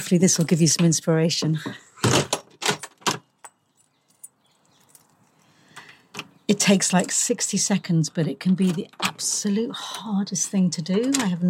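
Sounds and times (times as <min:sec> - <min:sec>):
speech: 0:00.0 - 0:02.2, 0:06.6 - 0:11.4
front door rattling and jangling as it is opened: 0:02.0 - 0:05.1, 0:08.5 - 0:09.5, 0:10.1 - 0:11.4.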